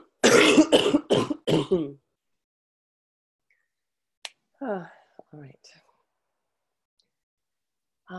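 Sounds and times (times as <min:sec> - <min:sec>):
person coughing harshly: 0:00.0 - 0:02.0.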